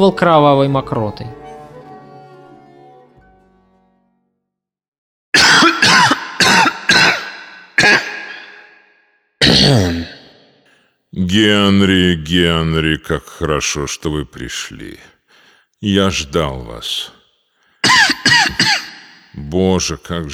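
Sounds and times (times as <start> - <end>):
speech: 0.0 - 1.4, 11.3 - 15.2, 15.8 - 17.2, 19.4 - 20.3
harsh violent coughing fit: 5.4 - 8.8, 9.4 - 10.4, 17.8 - 19.3.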